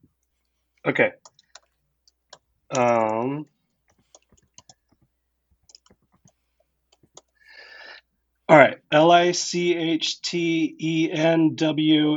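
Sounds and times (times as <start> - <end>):
speech: 0.8 - 1.3, 2.7 - 3.5, 8.5 - 12.1
typing on a keyboard: 1.2 - 7.4.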